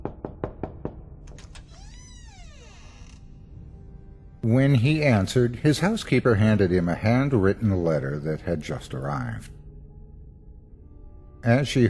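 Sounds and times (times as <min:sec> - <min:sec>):
knocking on a wooden bedroom door: 0:00.0 - 0:01.1
speech: 0:04.5 - 0:09.6, 0:11.4 - 0:11.8.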